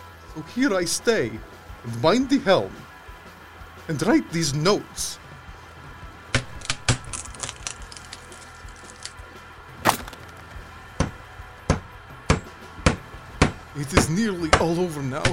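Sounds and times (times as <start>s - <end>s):
speech: 0.4s - 2.9s, 3.9s - 5.2s, 13.8s - 15.3s
sharp hard knocks on wood: 11.0s - 15.3s.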